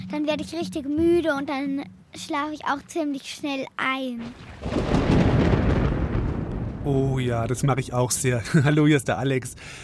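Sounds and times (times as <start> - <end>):
speech: 0.1 - 5.1, 6.8 - 9.8
distant thunder rumbling from a storm: 4.2 - 9.7
rain dripping onto tree leaves outdoors: 4.3 - 7.8
laughter: 8.3 - 8.9.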